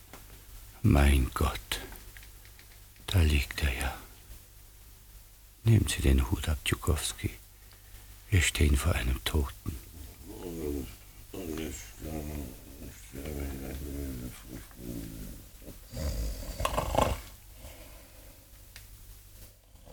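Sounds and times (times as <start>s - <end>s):
speech: 0.8s - 1.7s, 3.1s - 4.0s, 5.6s - 7.4s, 8.3s - 9.8s
man snoring in a drama scene: 9.7s - 17.9s.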